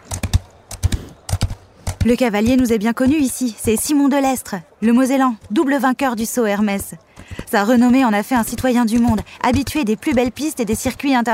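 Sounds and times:
horse hooves galloping on a soft sand race track: 0.0s - 11.3s
speech: 2.0s - 11.3s.

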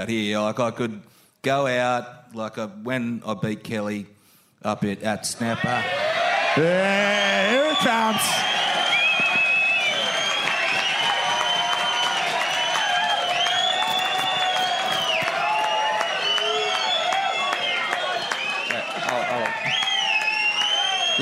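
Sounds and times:
speech: 0.0s - 6.0s, 6.6s - 8.6s
large crowd cheering: 5.5s - 21.2s
whistles: 6.9s - 21.2s
scattered clapping: 8.2s - 21.2s.

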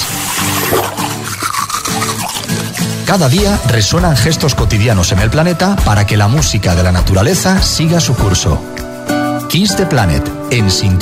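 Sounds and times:
toothbrush scrubbing against teeth: 0.0s - 3.7s
speech: 3.1s - 10.9s.

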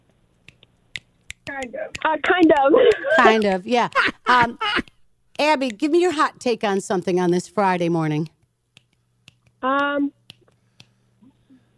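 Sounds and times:
crisp finger snaps: 0.4s - 4.0s, 8.2s - 11.4s
speech: 1.5s - 8.3s, 9.6s - 10.2s
person laughing: 2.3s - 5.0s.

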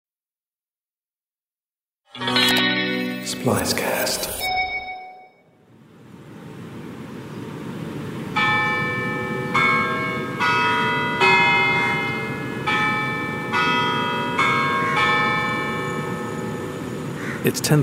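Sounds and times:
speech: 2.1s - 4.6s, 17.4s - 17.8s
clock tower chimes striking: 2.6s - 5.4s, 8.3s - 17.3s
outdoor hum of traffic: 5.6s - 17.8s.

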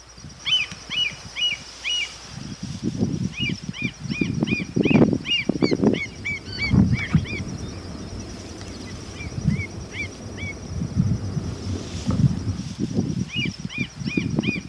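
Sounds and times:
low rumbling wind or surf: 0.0s - 14.6s
bird chirping in Galápagos: 3.3s - 11.4s, 13.3s - 14.6s.

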